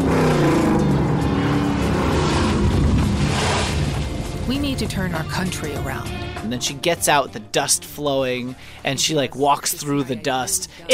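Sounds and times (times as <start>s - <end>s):
car engine revving as the car spins around: 0.0s - 6.4s
tire and road noise: 0.0s - 6.4s
speech: 4.8s - 10.9s.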